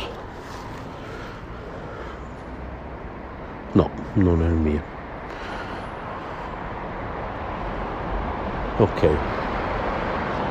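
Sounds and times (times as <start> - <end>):
heavy vehicle engine rumbling: 0.0 - 10.4
traffic noise: 0.0 - 10.4
speech: 3.8 - 5.0, 8.8 - 9.4.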